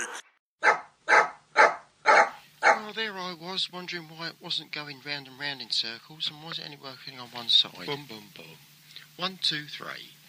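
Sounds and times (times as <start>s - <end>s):
dog barking: 0.6s - 2.9s
speech: 3.5s - 10.2s.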